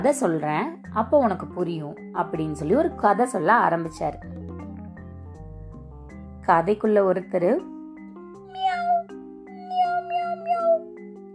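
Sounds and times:
speech: 0.0 - 4.4, 6.4 - 7.7
cat meowing: 8.4 - 10.9.

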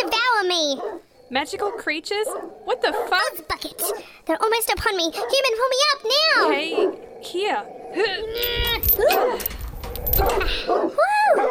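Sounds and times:
dogs barking and yipping below a high fence: 0.0 - 4.2, 4.9 - 11.4
speech: 0.7 - 9.6, 10.2 - 11.4
dogs snapping their teeth excitedly: 8.4 - 10.6.

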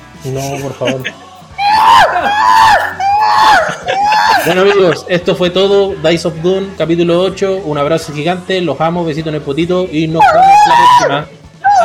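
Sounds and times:
speech: 0.2 - 1.2, 1.8 - 11.4
laughter: 0.3 - 5.3
person imitating chimpanzee-like ape screams: 1.6 - 5.0, 10.2 - 11.8.

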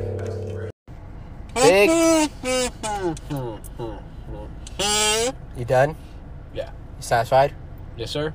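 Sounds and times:
kazoo tune: 1.6 - 3.2, 4.7 - 5.4
speech: 5.7 - 6.0, 7.0 - 8.3.

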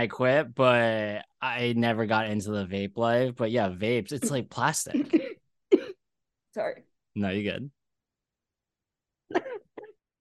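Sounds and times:
speech: 0.0 - 5.2, 6.6 - 7.8
person coughing after something went down the wrong pipe: 4.2 - 6.0, 9.3 - 10.0.

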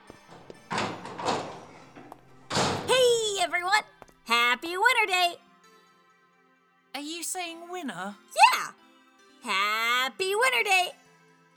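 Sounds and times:
door opening with a solid clunk as a guest arrives: 0.0 - 3.1
rattling thump of the door: 0.1 - 3.0
speech: 3.4 - 5.4, 7.0 - 8.8, 9.4 - 11.0.

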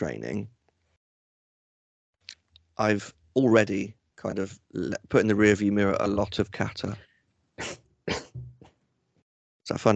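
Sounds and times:
speech: 0.0 - 0.6, 2.8 - 8.2, 9.7 - 9.9
person sneezing: 7.6 - 8.5.

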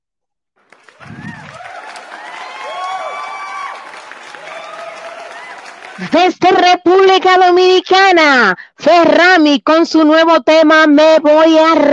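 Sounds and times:
crowd applauding for a singer from Mexico: 0.6 - 6.3
speech: 6.0 - 11.9.

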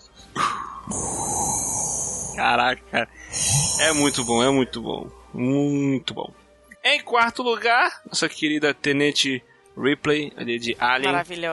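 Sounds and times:
voice imitating menacing respirator breathing through a helmet: 0.3 - 2.4, 3.1 - 4.4
speech: 2.4 - 11.5.

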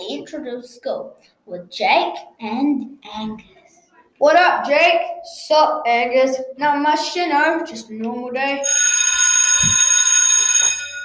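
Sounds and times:
speech: 0.1 - 3.6, 4.2 - 9.0
school bell ringing: 8.6 - 11.0.

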